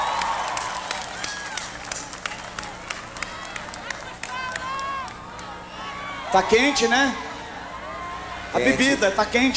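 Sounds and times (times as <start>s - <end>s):
audience applause: 0.0s - 5.5s
cheers: 0.0s - 8.8s
crowd noise: 0.0s - 9.5s
speech: 6.3s - 7.2s, 8.5s - 9.5s.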